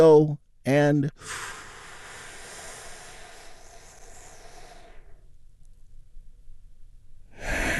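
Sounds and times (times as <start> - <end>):
speech: 0.0 - 1.6
big deep healing breath: 1.2 - 5.6, 7.3 - 7.7.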